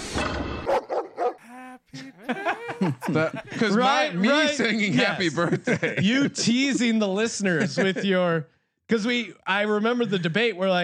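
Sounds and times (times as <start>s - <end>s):
dog barking: 0.6s - 1.4s
laughter: 1.4s - 8.4s
speech: 2.3s - 10.8s.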